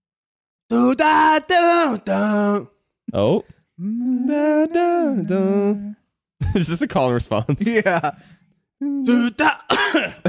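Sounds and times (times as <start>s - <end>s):
speech: 0.9s - 5.9s, 6.5s - 10.2s
short voiced hum: 3.2s - 6.0s, 8.8s - 9.5s
harsh raspy coughs: 9.4s - 10.2s.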